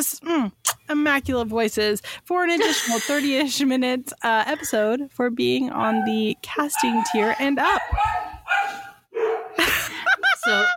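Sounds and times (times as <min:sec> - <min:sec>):
speech: 0:00.0 - 0:09.3, 0:10.4 - 0:10.7
dog barking in whiny yelps: 0:05.8 - 0:06.2, 0:06.8 - 0:09.6
laughter: 0:09.6 - 0:10.7.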